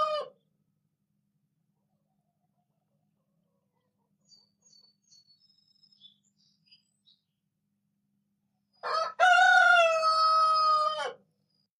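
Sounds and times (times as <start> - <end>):
rooster crowing: 0.0 - 0.4, 8.8 - 11.3.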